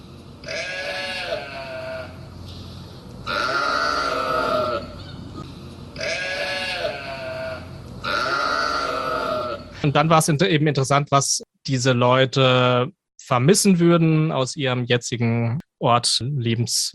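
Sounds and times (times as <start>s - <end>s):
large flock of sheep bleating at night pen beside housing settlement: 0.4s - 2.2s, 3.3s - 5.1s, 6.0s - 9.7s
speech: 9.8s - 16.9s.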